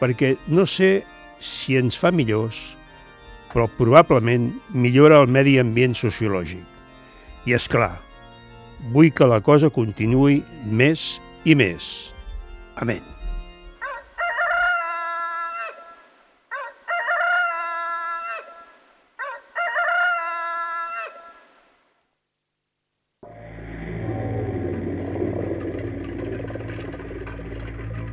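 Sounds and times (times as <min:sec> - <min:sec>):
speech: 0:00.0 - 0:02.8, 0:03.5 - 0:06.7, 0:07.4 - 0:08.1, 0:08.8 - 0:12.1, 0:12.8 - 0:13.2
rooster crowing: 0:13.8 - 0:21.5
steady low rumbling noise: 0:23.2 - 0:28.1.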